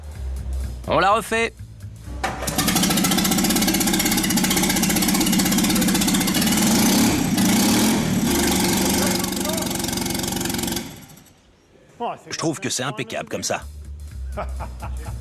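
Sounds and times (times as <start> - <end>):
speech: 0.9 - 1.6, 12.1 - 13.8, 14.4 - 15.1
AMG car engine running without exhaust in a workshop: 2.3 - 11.4
laughter: 14.3 - 15.1.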